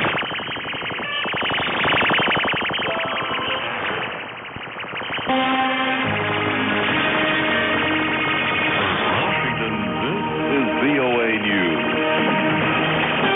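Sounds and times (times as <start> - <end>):
sweeping whistle-like tones: 0.0 - 12.5
shortwave radio jamming buzz and warbling drone: 0.0 - 13.3
barely audible English-language international broadcast voice: 9.6 - 12.0.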